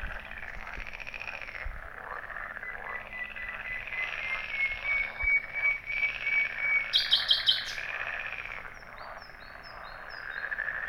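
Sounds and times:
common nightingale song: 2.2 - 10.8.

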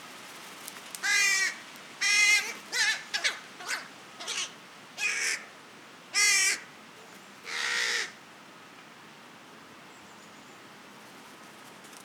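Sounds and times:
Carrion crow Corvus corone croaking caws: 1.0 - 5.5, 6.2 - 6.7, 7.5 - 8.2.

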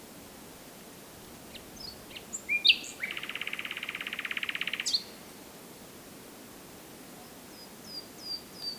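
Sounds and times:
common nightingale Luscinia megarhynchos song: 1.5 - 5.3, 7.2 - 8.7.

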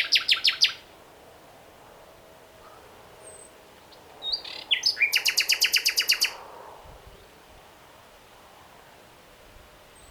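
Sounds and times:
common nightingale (Luscinia megarhynchos) song phrase: 0.0 - 0.9, 2.6 - 6.4, 9.9 - 10.0.

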